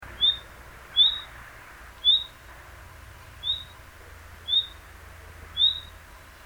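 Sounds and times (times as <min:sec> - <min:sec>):
low background hum: 0:00.0 - 0:06.4
common nightingale Luscinia megarhynchos whistled call: 0:00.2 - 0:01.4, 0:02.0 - 0:02.4, 0:03.4 - 0:03.8, 0:04.4 - 0:04.8, 0:05.6 - 0:06.0.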